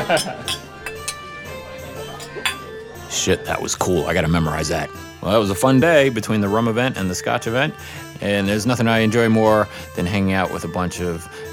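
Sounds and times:
glasses clinking in a toast: 0.0s - 3.1s
speech: 0.1s - 0.6s, 3.1s - 11.5s.

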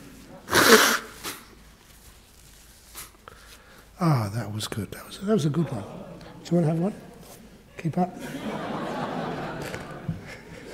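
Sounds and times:
person blowing their nose: 0.4s - 1.6s, 2.8s - 3.7s
faint sniff: 0.4s - 1.7s, 2.6s - 4.0s
speech: 0.7s - 1.0s, 4.0s - 7.1s, 7.8s - 8.6s
laughter: 5.3s - 7.2s, 8.0s - 10.7s.

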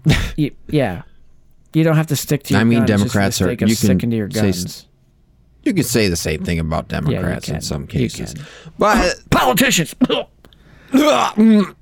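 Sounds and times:
throaty raspy coughs: 0.0s - 0.4s, 10.0s - 10.3s
speech: 0.0s - 1.1s, 1.7s - 4.9s, 5.6s - 11.8s.

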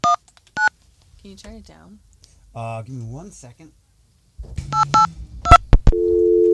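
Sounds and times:
speech: 1.2s - 3.8s
short electronic telephone beeps: 4.7s - 6.3s
steady loud low telephone busy signal tone: 4.8s - 6.5s.

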